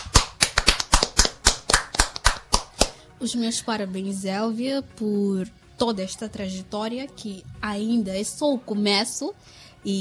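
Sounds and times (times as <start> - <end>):
hands clapping in sharp loud claps: 0.0 - 3.0
speech: 3.2 - 10.0.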